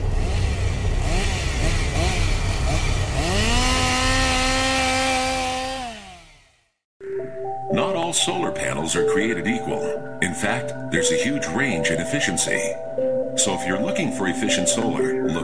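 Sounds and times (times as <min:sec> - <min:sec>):
chainsaw engine revving at a haunted attraction in Lee New Hampshire: 0:00.1 - 0:06.7
speech: 0:08.1 - 0:15.4.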